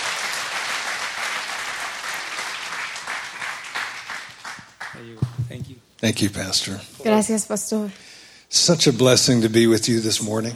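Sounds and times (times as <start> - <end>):
audience applauding at a church service: 0.0 - 5.5
speech: 5.0 - 10.5.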